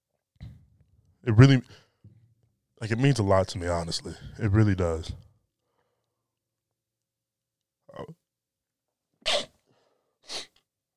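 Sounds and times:
speech: 1.2 - 1.8, 2.8 - 5.2, 7.9 - 8.2
person sneezing: 9.2 - 9.6, 10.2 - 10.6.

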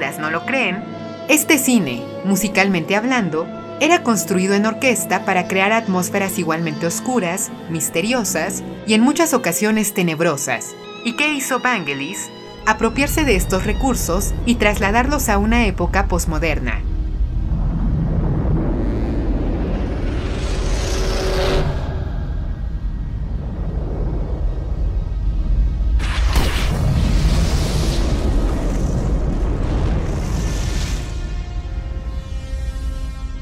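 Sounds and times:
speech: 0.2 - 16.9
deep booms: 12.6 - 32.6
constant low rumble of film ambience with synthesizer reverb: 12.6 - 33.4
bursts of roaring fire-like noise: 14.3 - 33.4.

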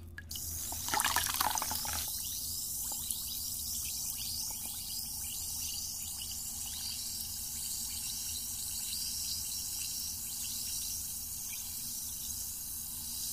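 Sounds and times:
faint drips and splashes of bath water: 0.1 - 2.1
fizzing and crackling hiss in bath water: 0.3 - 13.3.

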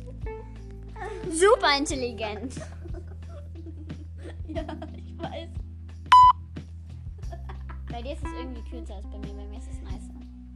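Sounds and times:
speech: 1.3 - 2.8, 4.5 - 5.6, 8.0 - 10.5
laughter: 2.2 - 5.4, 7.2 - 8.0
telephone beep tone: 6.1 - 6.4.

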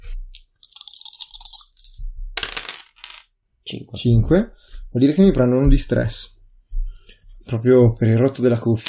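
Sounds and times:
dice rolling on a hard table surface: 0.4 - 3.3
speech: 3.7 - 6.4, 7.5 - 8.8.

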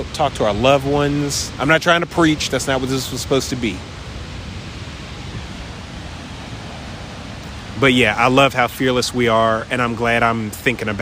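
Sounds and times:
speech: 0.0 - 4.0, 7.8 - 10.9
ocean waves with surf rolling in: 0.0 - 10.9.

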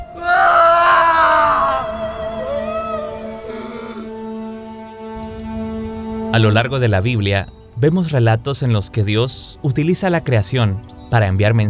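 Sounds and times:
steady sustained humming tones: 0.0 - 8.1
man crying out in agony: 0.1 - 4.1
speech: 6.3 - 11.6.

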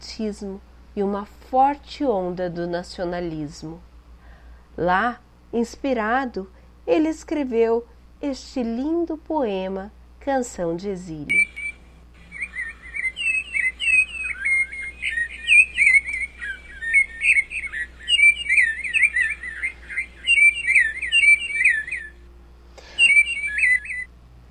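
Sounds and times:
faint low hum: 0.0 - 24.4
speech: 0.2 - 3.9, 4.8 - 11.6
sabiá thrush singing fluting phrases: 11.3 - 22.2, 22.8 - 24.1.

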